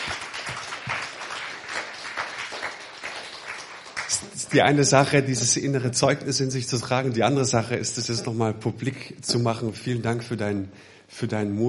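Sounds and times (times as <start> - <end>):
audience applauding: 0.0 - 4.9
speech: 4.2 - 11.6.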